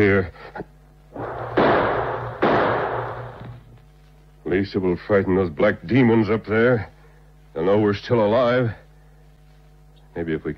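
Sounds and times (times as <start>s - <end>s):
speech: 0.0s - 0.8s, 4.5s - 6.9s, 7.6s - 8.8s, 10.2s - 10.5s
gunshots fired to signal for help: 1.2s - 3.5s.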